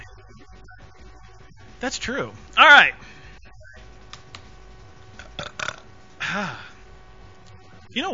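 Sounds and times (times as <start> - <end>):
speech: 1.8 - 3.2, 7.9 - 8.1
loud belch after drinking water: 5.2 - 5.9.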